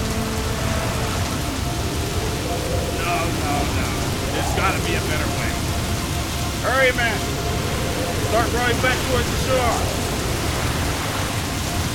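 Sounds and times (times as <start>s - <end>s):
deep low rumble of thunder: 0.0s - 11.9s
heavy rain pouring: 0.0s - 11.9s
speech: 8.5s - 10.0s.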